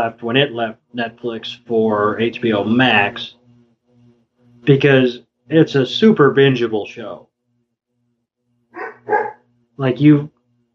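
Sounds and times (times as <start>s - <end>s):
speech: 0.0s - 3.4s, 4.6s - 7.3s, 9.8s - 10.4s
dog barking outdoors at night: 8.8s - 9.4s.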